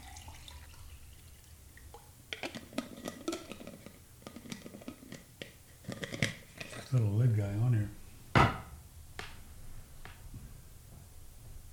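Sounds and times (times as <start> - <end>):
hydrogen water pouring into a container: 0.0 - 2.0
speech: 6.9 - 8.0.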